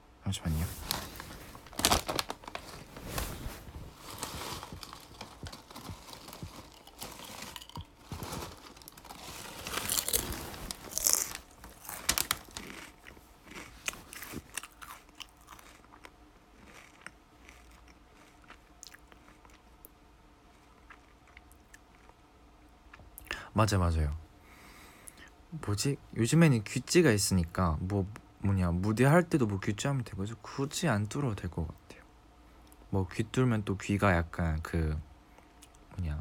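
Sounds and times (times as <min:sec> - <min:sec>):
speech: 0:00.3 - 0:01.0, 0:23.6 - 0:24.2, 0:25.7 - 0:31.9, 0:32.9 - 0:35.1, 0:36.0 - 0:36.1
crunching and chewing snacks: 0:00.9 - 0:02.9, 0:03.9 - 0:23.3.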